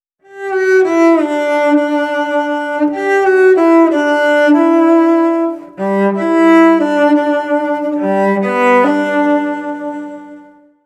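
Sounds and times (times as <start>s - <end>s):
cellist playing at a wedding: 0.2s - 10.8s.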